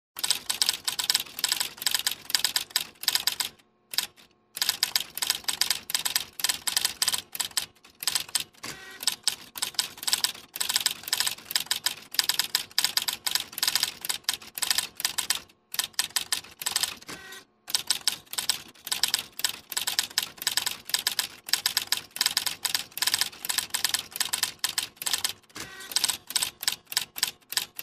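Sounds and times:
fax machine scanning: 0:00.2 - 0:27.7.

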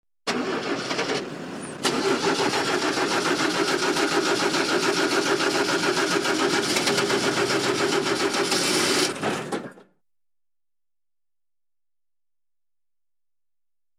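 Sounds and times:
old car engine hard start: 0:00.3 - 0:09.9.

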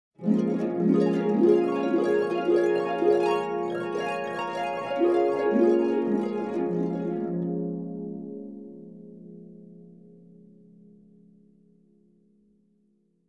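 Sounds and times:
short dream harp up and down glissandos: 0:00.2 - 0:08.5.

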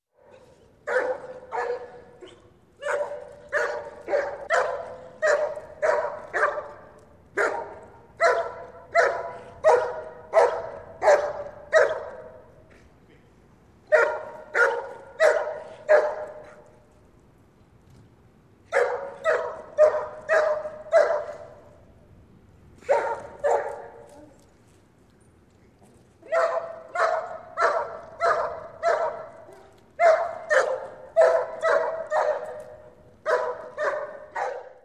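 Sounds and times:
dog barking in empty street at night: 0:00.2 - 0:12.4, 0:13.9 - 0:16.6, 0:18.7 - 0:21.6, 0:22.8 - 0:24.3, 0:26.2 - 0:34.8.

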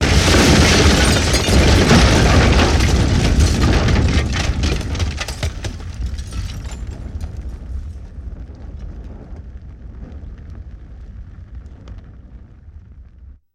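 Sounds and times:
debris falling: 0:00.0 - 0:09.1
explosions: 0:00.0 - 0:13.4
fire: 0:00.0 - 0:13.4.

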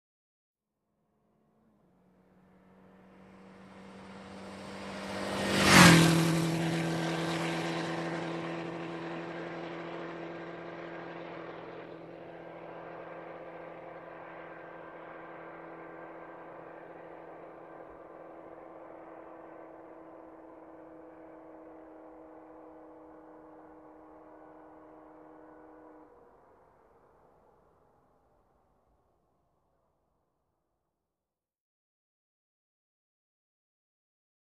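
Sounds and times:
motorcycle passing by fast: 0:01.3 - 0:27.4.

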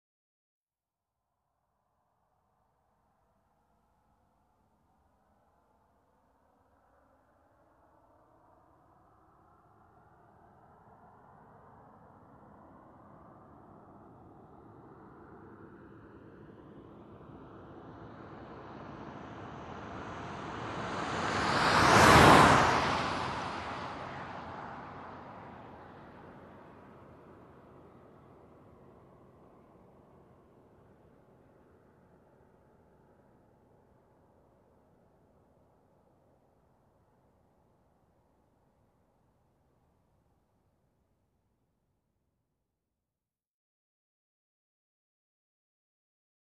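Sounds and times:
car passing by at medium speed: 0:08.3 - 0:33.3.

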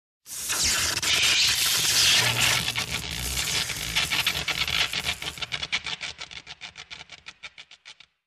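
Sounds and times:
long electric discharge: 0:00.3 - 0:05.8.

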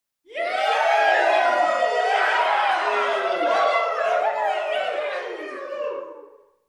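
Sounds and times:
ecstatic crowd cheering: 0:00.2 - 0:06.4
laughter: 0:00.6 - 0:06.1.

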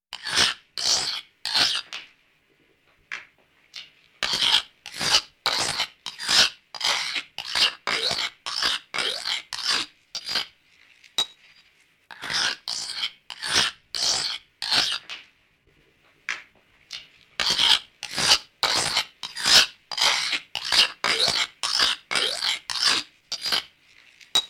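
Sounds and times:
concrete being mixed by hand: 0:00.1 - 0:02.0, 0:04.2 - 0:11.2, 0:12.1 - 0:15.1, 0:16.9 - 0:24.4.

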